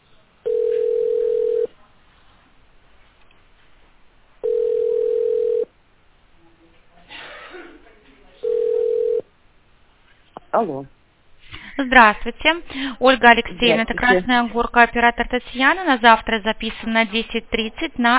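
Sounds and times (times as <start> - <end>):
telephone ringback tone while placing a call: 0.5 - 1.7, 4.4 - 5.7, 8.4 - 9.2
speech: 10.6 - 11.0, 11.8 - 18.1.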